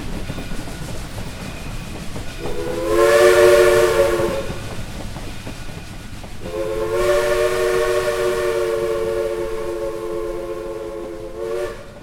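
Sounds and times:
steam train engine chugging rumble: 0.0s - 12.0s
steam train whistle blasts: 2.4s - 4.6s, 6.4s - 12.0s.

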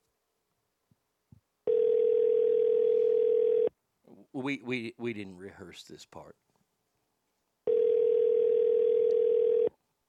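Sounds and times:
telephone ringback tone from an unanswered outgoing call: 1.7s - 3.7s, 7.7s - 9.7s
speech: 4.4s - 6.5s.

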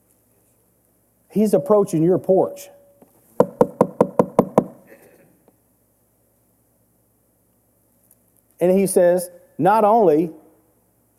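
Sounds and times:
speech: 1.3s - 2.8s, 8.6s - 10.4s
knocking on a wooden door: 3.4s - 4.8s.

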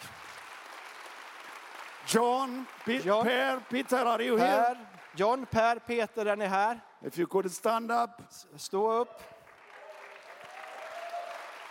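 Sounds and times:
crowd applauding: 0.0s - 6.0s, 9.2s - 11.6s
speech: 2.1s - 9.4s.

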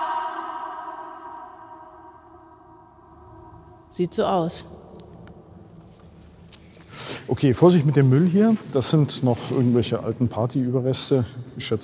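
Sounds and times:
voice reverberation in a cathedral-sized hall: 0.0s - 4.9s
speech: 3.9s - 4.8s, 7.3s - 11.8s.

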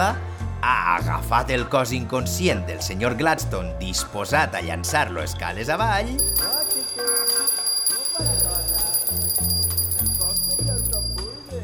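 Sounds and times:
speech: 0.0s - 6.5s
low rhythmic sounds: 6.2s - 11.6s
small bell ringing: 6.2s - 11.6s.

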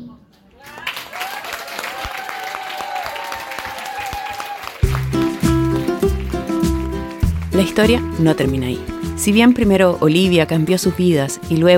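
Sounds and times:
audience applause for a female performer: 0.6s - 7.8s
loud rhythmic music passage: 4.8s - 11.7s
speech: 7.6s - 11.7s.

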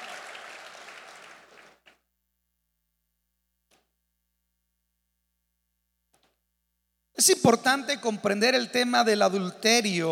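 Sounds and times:
audience applause: 0.0s - 1.9s
scattered claps: 0.0s - 2.0s
speech: 7.2s - 10.1s.

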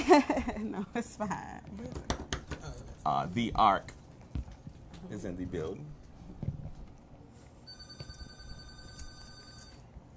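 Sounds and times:
low noise: 0.0s - 10.1s
speech: 0.1s - 2.2s, 3.0s - 4.0s, 5.1s - 6.0s
telephone ringing with an incoming call: 7.7s - 10.0s.

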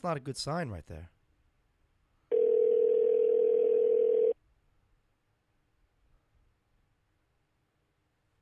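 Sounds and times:
speech: 0.0s - 1.2s
electronic ringback tone from an unanswered outgoing phone call: 2.3s - 4.4s.

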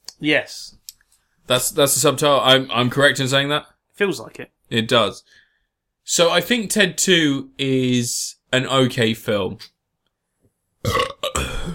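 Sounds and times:
speech: 0.2s - 0.8s, 1.5s - 5.4s, 6.1s - 9.8s, 10.8s - 11.5s
loud burp into the microphone: 10.8s - 11.7s.

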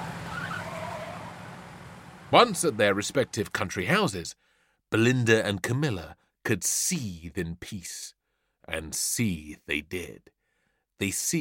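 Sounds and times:
racing car tires skidding and squealing: 0.0s - 2.7s
racing car engine roar: 0.0s - 3.4s
speech: 2.3s - 10.4s, 11.0s - 11.4s.

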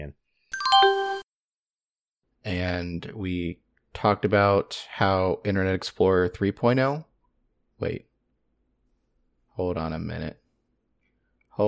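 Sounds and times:
quick descending chime of bright tones: 0.6s - 1.2s
speech: 2.4s - 7.1s, 7.8s - 8.1s, 9.6s - 10.4s.

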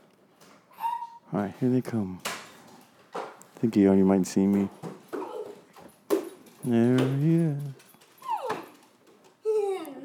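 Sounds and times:
dog whimpering and yipping: 0.8s - 1.2s, 8.2s - 8.8s
speech: 1.3s - 2.3s, 3.6s - 4.8s, 6.6s - 7.8s.

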